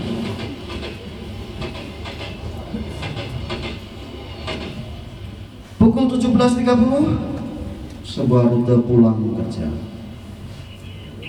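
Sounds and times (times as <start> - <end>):
rhythmic clacks and rattles of a commuter train: 0.0 - 8.7
moving commuter train rumble heard from inside the carriage: 0.0 - 11.2
speech: 5.9 - 7.3, 8.2 - 9.9.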